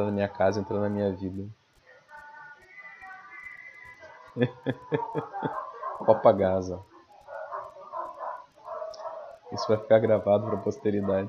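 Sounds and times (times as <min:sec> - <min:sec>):
speech: 0:00.0 - 0:01.6, 0:04.4 - 0:06.9, 0:09.5 - 0:11.2
laughter: 0:04.3 - 0:06.4
several dogs barking as they pass by: 0:04.9 - 0:11.2.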